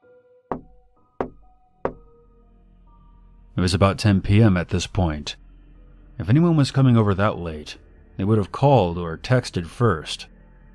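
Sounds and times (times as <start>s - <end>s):
knocking on a door: 0.5s - 2.1s
speech: 3.6s - 5.4s, 6.2s - 10.3s.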